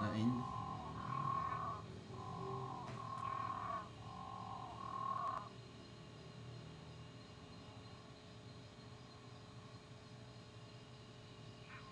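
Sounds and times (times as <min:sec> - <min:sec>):
Physalaemus moreirae frog calling: 0:00.0 - 0:05.7, 0:11.6 - 0:11.9
low background noise: 0:00.0 - 0:11.9.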